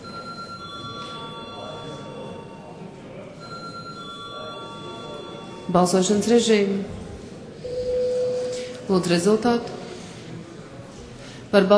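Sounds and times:
faint bell ringing in a parliament chamber to call a vote: 0.0s - 6.5s
broad noise in a parliament chamber: 0.0s - 11.7s
speech: 5.7s - 7.0s, 8.9s - 9.8s, 11.5s - 11.7s.

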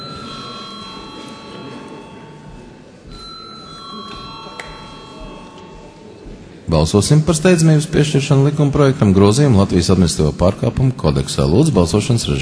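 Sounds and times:
parliamentary voting bell ringing: 0.0s - 6.2s
speech: 6.7s - 12.4s.

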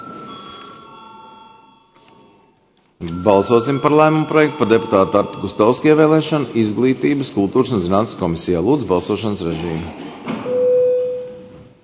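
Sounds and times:
parliamentary voting bell ringing: 0.0s - 7.4s
speech: 3.0s - 10.1s.

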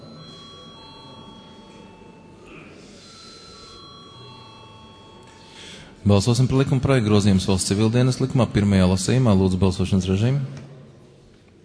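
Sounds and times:
parliament chamber electric bell ringing before a vote: 0.0s - 6.0s
low murmur of parliament chamber room noise: 0.0s - 11.6s
speech: 6.0s - 10.7s.

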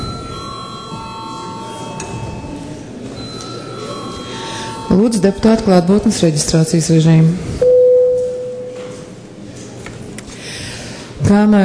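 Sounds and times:
parliamentary chamber bell ringing to call deputies: 0.0s - 6.4s, 7.6s - 9.0s
speech: 4.9s - 7.6s, 11.3s - 11.6s.

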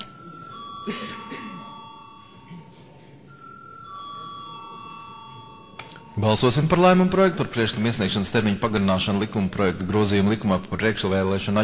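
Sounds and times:
electric bell ringing to summon members to a vote in the Latvian parliament chamber: 0.0s - 7.9s
faint murmur of voices: 0.0s - 11.6s
speech: 0.8s - 1.7s, 6.2s - 11.6s.

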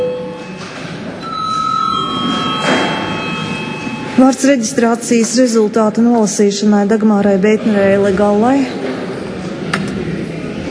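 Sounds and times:
electric bell ringing in a parliamentary chamber to call deputies for registration: 0.0s - 4.8s
speech: 4.2s - 9.0s.

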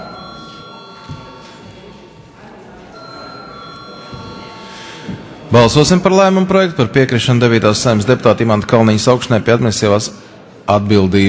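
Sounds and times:
electric bell rung in a parliamentary session to call a vote: 0.0s - 2.0s, 3.0s - 5.2s
faint voices murmuring: 0.0s - 11.2s
speech: 5.5s - 11.2s.

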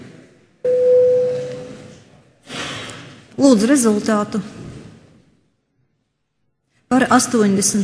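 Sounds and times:
low murmuring room hum in a parliament chamber: 0.0s - 7.8s
electronic voting bell tone in a parliament chamber: 0.7s - 1.8s
speech: 3.4s - 4.6s, 6.9s - 7.8s.

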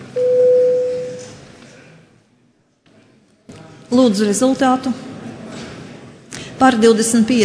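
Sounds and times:
parliamentary voting bell electronic signal tone in the Latvian parliament: 0.2s - 1.4s
speech: 3.9s - 5.1s, 6.6s - 7.4s.

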